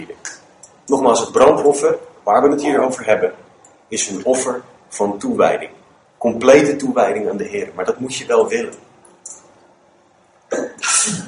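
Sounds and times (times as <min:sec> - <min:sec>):
speech: 0:00.9 - 0:08.9
person sneezing: 0:10.5 - 0:11.2.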